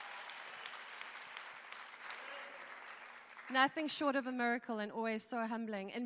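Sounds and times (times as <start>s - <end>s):
audience applause: 0.0s - 3.6s
speech: 3.5s - 6.0s.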